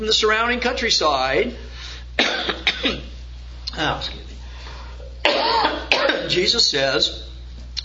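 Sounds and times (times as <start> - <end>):
speech: 0.0 - 4.4, 6.3 - 7.3
person clearing throat: 2.2 - 3.1, 5.1 - 6.4
person coughing: 2.2 - 3.1, 5.0 - 6.4.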